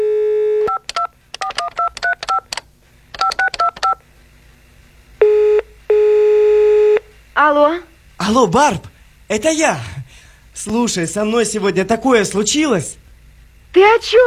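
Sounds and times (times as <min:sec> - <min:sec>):
steady telephone line tone: 0:00.0 - 0:02.4, 0:05.2 - 0:07.1
speech: 0:07.4 - 0:09.9, 0:10.6 - 0:13.0, 0:13.7 - 0:14.2.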